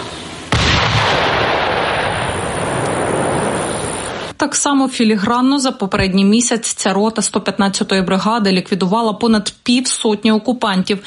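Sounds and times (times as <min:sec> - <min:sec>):
large bomb exploding on enemy shelter: 0:00.5 - 0:04.3
speech: 0:04.4 - 0:11.0.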